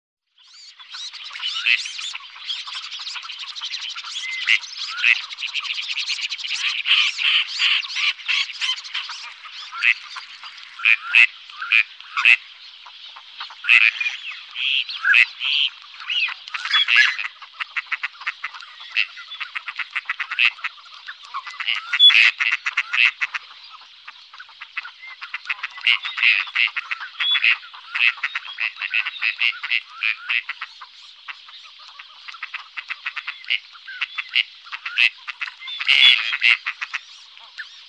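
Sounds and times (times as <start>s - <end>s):
gadwall duck calling: 0.7s - 5.7s, 6.5s - 12.4s, 13.1s - 23.8s, 24.4s - 37.6s.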